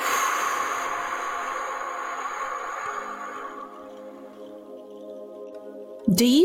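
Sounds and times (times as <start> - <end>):
deep inhale and exhale during a breathing exercise: 0.0 - 4.7
speech: 6.1 - 6.4.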